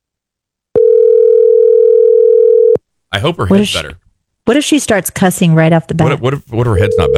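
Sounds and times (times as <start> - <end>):
ringing tone of an outgoing phone call placed by voice assistant: 0.8 - 2.8, 6.7 - 7.1
speech: 3.2 - 7.1.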